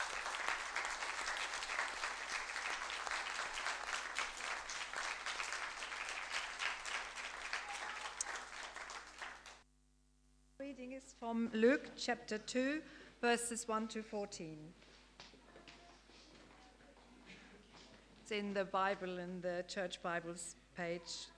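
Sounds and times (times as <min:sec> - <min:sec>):
audience applause: 0:00.0 - 0:09.6
speech: 0:10.9 - 0:14.8, 0:18.3 - 0:21.3.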